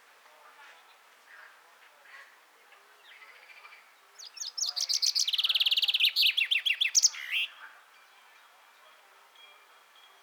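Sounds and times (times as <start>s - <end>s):
common chaffinch Fringilla coelebs singing: 4.2s - 7.5s.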